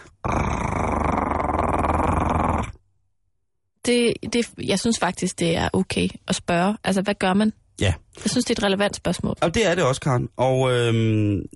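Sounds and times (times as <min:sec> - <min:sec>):
wolf's deep rumbling growl: 0:00.2 - 0:02.8
speech: 0:03.9 - 0:11.5.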